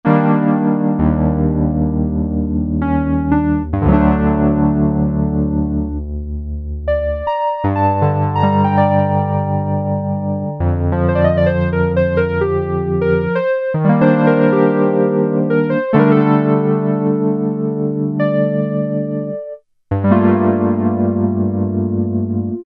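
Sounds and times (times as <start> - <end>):
electric piano: 0.0 - 22.6.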